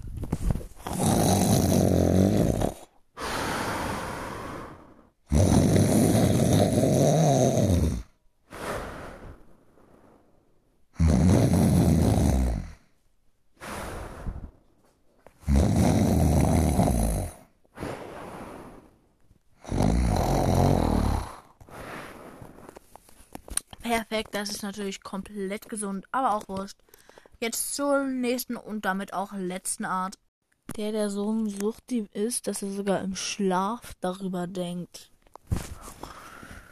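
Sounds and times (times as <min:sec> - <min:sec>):
loud exaggerated snoring imitating an abnormal snorer: 0:00.8 - 0:09.4, 0:10.9 - 0:12.9, 0:15.4 - 0:19.0, 0:19.6 - 0:22.6
speech: 0:23.9 - 0:30.2, 0:30.8 - 0:35.7.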